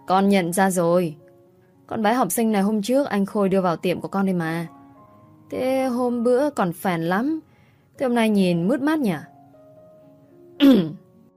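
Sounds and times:
speech: 0.1 - 1.2, 1.9 - 4.8, 5.5 - 9.3, 10.6 - 11.0
mother clearing her throat in disapproval: 10.6 - 11.0.

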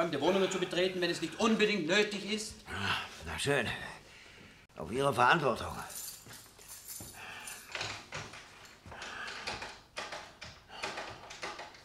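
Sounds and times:
speech: 0.0 - 4.0, 4.8 - 6.0
key rattling and scraping in a door lock it does not fit: 5.7 - 11.8.

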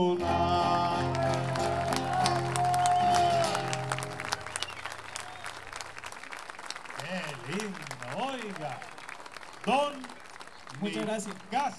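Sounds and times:
speech: 0.0 - 0.5, 10.8 - 11.7
sustained guitar-like chords: 0.0 - 4.3
audience applause at a payador folk-verse gathering: 0.0 - 11.7
laughter: 0.0 - 11.7.

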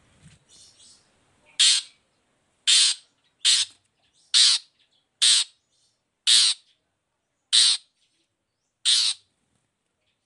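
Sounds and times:
long-tailed shrike giving loud rasping squawks: 1.6 - 2.0, 2.7 - 3.8, 4.4 - 5.6, 6.3 - 6.7, 7.6 - 7.9, 8.8 - 9.2.

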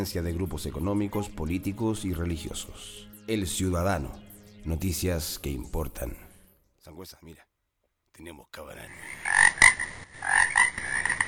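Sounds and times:
speech: 0.0 - 6.2, 6.8 - 7.5, 8.2 - 9.3
chorus of toads croaking: 8.9 - 11.2.

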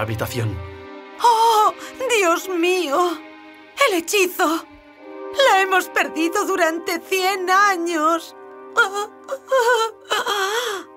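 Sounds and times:
speech: 0.0 - 4.7, 5.3 - 10.9
girl crying: 8.8 - 10.9.

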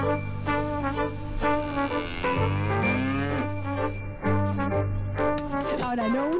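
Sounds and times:
radio jingle musical notes: 0.0 - 6.3
cow mooing inside a radio jingle: 1.4 - 3.8.

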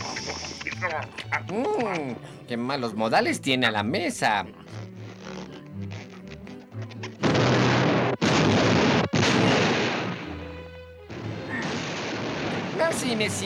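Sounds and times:
laughter: 0.0 - 2.8
speech: 0.8 - 4.6, 13.0 - 13.4
cartoon explosion as an overstuffed character bursts: 7.2 - 10.3, 11.1 - 13.2.

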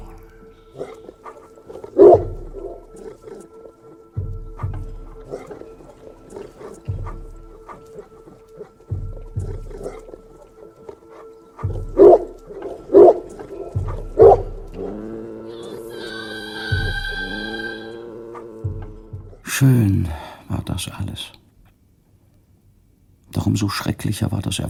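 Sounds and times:
dog growling at the moon: 0.1 - 19.5
speech: 19.6 - 20.2, 20.7 - 21.5, 23.5 - 24.6.

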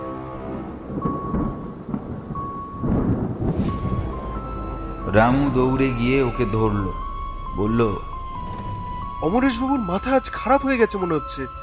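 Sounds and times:
rain: 0.0 - 10.0
rolling thunder crashing with lightning, audio drama effect: 0.6 - 9.9
speech: 5.2 - 7.0, 7.6 - 8.1, 9.2 - 11.6.

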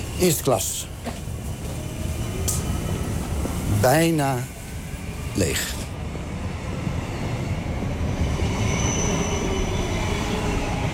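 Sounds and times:
passenger train wheels rumbling on track: 0.0 - 10.9
speech: 0.2 - 1.2, 3.8 - 4.6, 5.4 - 5.8
faint high squeal of passenger train on rails: 8.4 - 10.7.

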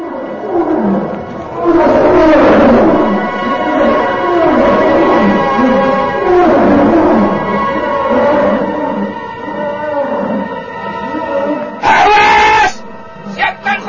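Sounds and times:
hungry white polar bears roaring: 0.0 - 13.8.

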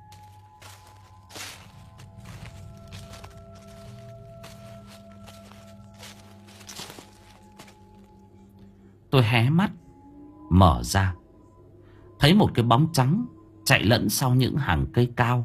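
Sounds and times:
footsteps rustling over dry leaves: 0.0 - 8.3
steady low droning background: 0.0 - 15.4
speech: 9.1 - 9.8, 10.5 - 11.2, 12.2 - 15.4.

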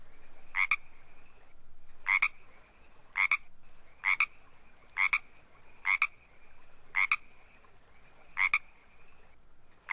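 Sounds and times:
Pacific tree frog croaking in two-part calls: 0.5 - 0.9, 2.0 - 2.4, 3.2 - 6.2, 6.9 - 7.4, 8.3 - 8.8, 9.8 - 9.9.

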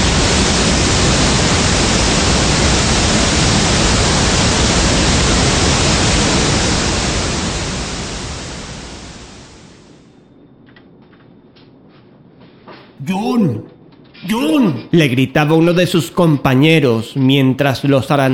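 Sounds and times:
rushing sea water flooding everything: 0.0 - 10.0
speech: 14.9 - 18.3.

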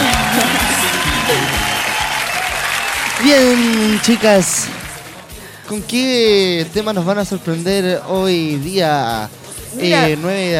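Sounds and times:
audience applauding: 0.0 - 5.3
speech: 3.2 - 4.8, 5.7 - 10.5.

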